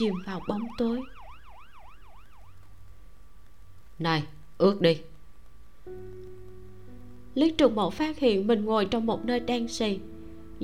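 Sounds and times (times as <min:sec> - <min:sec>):
speech: 0:00.0 - 0:01.2, 0:04.0 - 0:05.1, 0:07.4 - 0:10.6
emergency vehicle siren wailing: 0:00.0 - 0:02.7.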